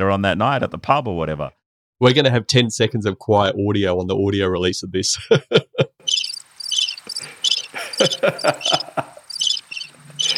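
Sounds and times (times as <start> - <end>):
speech: 0.0 - 5.6, 8.0 - 9.0
laughter: 5.2 - 6.0, 7.2 - 9.3
crickets chirping: 6.0 - 10.3
low animal calls: 6.0 - 10.3.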